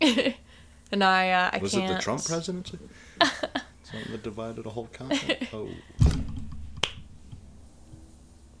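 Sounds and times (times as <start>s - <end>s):
laughter: 0.0s - 0.5s, 1.4s - 6.0s
speech: 0.9s - 6.2s
headphone cord slapping against a microphone: 5.9s - 8.3s.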